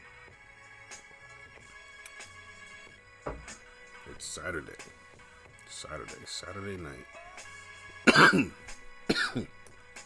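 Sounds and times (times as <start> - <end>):
speech: 4.2 - 5.0, 5.8 - 7.2, 8.2 - 8.6, 9.3 - 9.6
person coughing harshly: 8.1 - 9.5.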